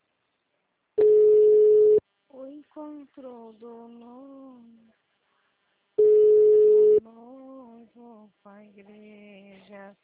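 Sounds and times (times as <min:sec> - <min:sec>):
telephone busy signal: 0:01.0 - 0:02.0, 0:06.0 - 0:07.0
speech: 0:02.8 - 0:05.0, 0:07.0 - 0:10.0.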